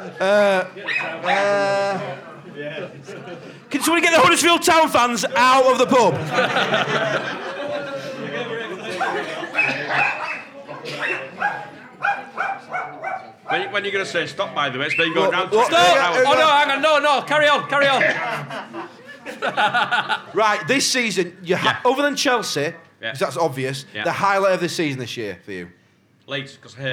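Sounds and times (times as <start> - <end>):
speech: 0.0 - 7.5, 13.8 - 18.4, 19.4 - 26.9
laughter: 0.0 - 12.4, 17.4 - 20.9
dog yelping: 0.8 - 1.5, 9.6 - 13.7.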